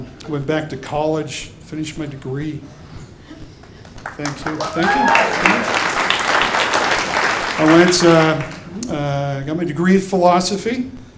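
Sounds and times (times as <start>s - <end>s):
speech: 0.3s - 2.8s, 4.2s - 5.9s, 7.6s - 11.1s
crowd clapping: 3.6s - 8.9s.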